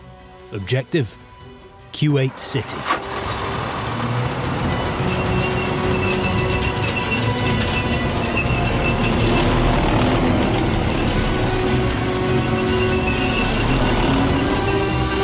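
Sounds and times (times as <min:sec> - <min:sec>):
speech: 0:00.5 - 0:01.3, 0:01.9 - 0:03.2
tank engines rumbling: 0:02.1 - 0:15.2
faint high metallic squeals: 0:03.1 - 0:09.5.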